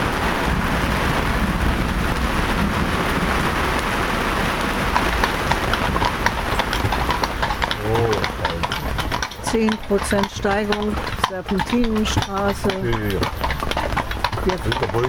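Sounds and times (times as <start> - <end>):
heavy thunderstorm rain pouring in the Czech Republic: 0.0 - 15.0
scattered sharp rain drops pattering: 4.9 - 15.0
speech: 9.5 - 13.4, 14.4 - 15.0.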